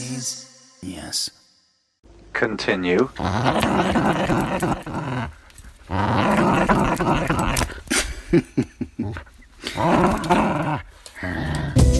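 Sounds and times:
speech: 0.8s - 1.4s, 2.4s - 6.2s, 7.0s - 7.4s, 8.3s - 8.7s
dog growling playfully: 3.1s - 11.9s.

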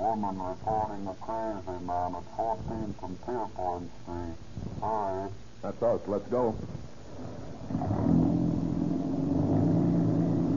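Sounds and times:
speech: 0.0s - 6.8s
old car engine accelerating: 7.3s - 10.5s.

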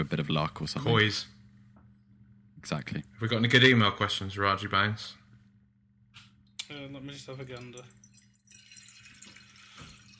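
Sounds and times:
speech: 0.0s - 1.4s, 2.6s - 5.2s, 6.7s - 8.0s
red wine pouring into a glass: 7.4s - 10.1s.

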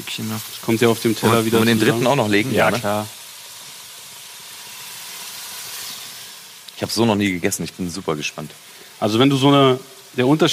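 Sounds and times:
speech: 0.0s - 3.2s, 6.8s - 10.5s
pieces of food sizzling on a teppanyaki griddle: 0.0s - 10.5s.

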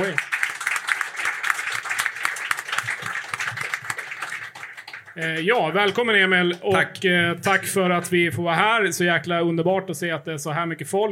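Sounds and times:
speech: 0.0s - 0.3s, 5.2s - 11.1s
audience applause at live podcast: 0.0s - 6.3s.

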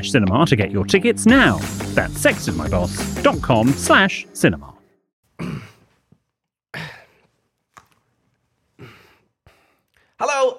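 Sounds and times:
speech: 0.0s - 4.8s, 10.2s - 10.5s
person clearing the throat: 5.4s - 6.0s, 6.7s - 7.3s.

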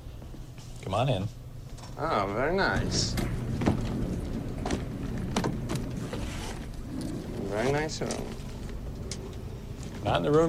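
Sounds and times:
speech: 0.9s - 1.4s, 2.0s - 3.4s, 7.6s - 8.4s, 10.0s - 10.4s
hotel elevator door sliding with a mechanical rumble: 2.1s - 10.4s.

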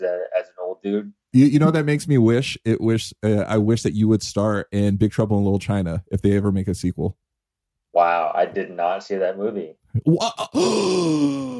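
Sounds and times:
speech: 0.0s - 7.2s, 8.0s - 11.5s
person giving a theatrical gasp of surprise: 10.2s - 11.5s.

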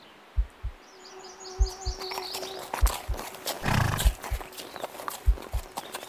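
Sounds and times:
faint birdsong chirping: 0.0s - 6.0s
horse hooves clip-clopping in a walking rhythm: 1.6s - 6.0s
horse snorting: 3.5s - 4.4s.

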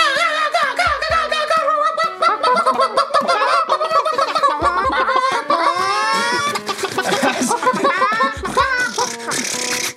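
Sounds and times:
chorus of chickens clucking and squawking in a room: 0.0s - 9.9s
laughter: 0.2s - 9.8s.

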